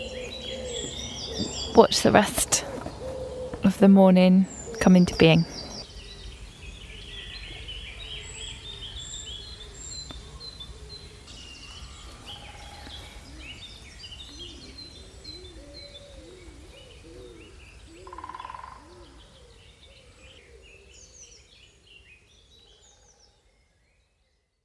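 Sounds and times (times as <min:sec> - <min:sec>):
soft cooing from pigeons or doves: 0:00.0 - 0:01.9, 0:02.5 - 0:03.7, 0:10.4 - 0:21.1
dawn chorus of many birds singing in woodland: 0:00.0 - 0:24.6
speech: 0:01.8 - 0:02.6, 0:03.7 - 0:05.6.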